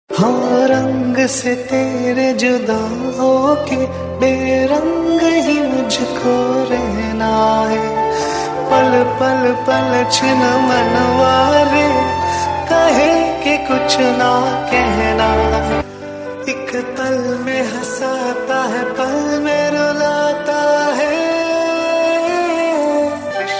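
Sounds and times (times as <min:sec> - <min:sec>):
sad melodic tone: 0:00.2 - 0:23.5.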